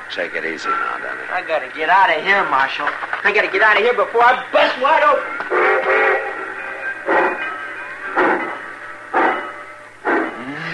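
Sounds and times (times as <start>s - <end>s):
steady mechanical hiss and hum of a train: 0.0s - 10.7s
train engine chuffing while pulling out of a station: 0.0s - 10.7s
speech: 0.1s - 5.9s.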